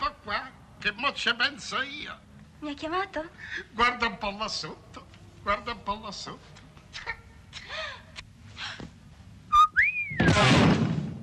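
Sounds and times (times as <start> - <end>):
speech: 0.8 - 4.8, 5.4 - 7.2
person whistling: 9.5 - 10.4.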